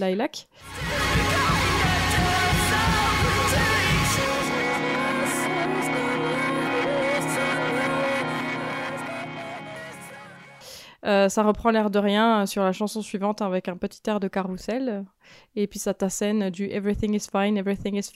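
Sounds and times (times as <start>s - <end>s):
speech: 0.0s - 1.4s, 11.0s - 18.1s
loud dense music with heavy low end: 0.6s - 10.6s.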